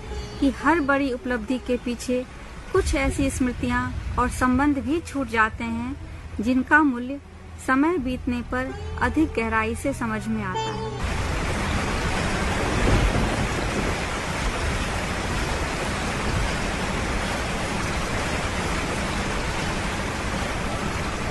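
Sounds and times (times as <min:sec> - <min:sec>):
heavy monsoon rain pouring in Ashadh: 0:00.0 - 0:21.2
speech: 0:00.4 - 0:11.1
thunder rumbling from the clouds: 0:02.8 - 0:06.7, 0:11.0 - 0:21.2.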